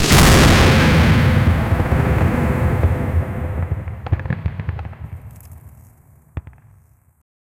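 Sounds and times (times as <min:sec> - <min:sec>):
fantasy flames sound effect: 0:00.0 - 0:04.1.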